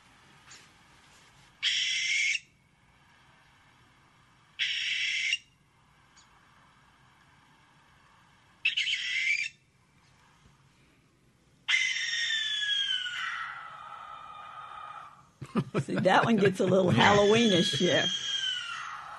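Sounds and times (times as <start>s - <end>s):
barn owl giving harsh hissing screeches: 1.6s - 2.6s, 4.6s - 5.6s, 8.6s - 9.6s, 11.6s - 15.3s, 17.0s - 19.1s
laughter: 15.4s - 18.1s
speech: 15.6s - 18.2s.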